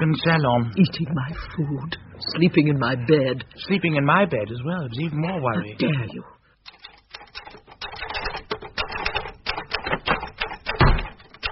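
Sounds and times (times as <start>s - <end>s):
speech: 0.0s - 6.8s
typewriter keys clacking: 6.6s - 11.4s.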